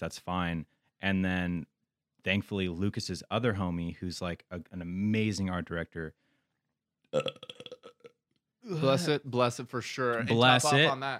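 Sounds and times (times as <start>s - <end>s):
speech: 0.0s - 6.2s, 7.1s - 7.7s, 8.6s - 11.1s
man burping loudly with croaky pulses: 7.1s - 9.0s.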